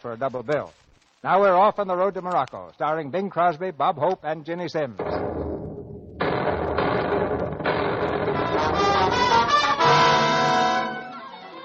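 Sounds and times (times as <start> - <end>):
speech: 0.0 - 5.5
booming explosions sinking a freighter off the coast of Africa: 5.0 - 9.9
rising tonal wail: 6.2 - 11.3.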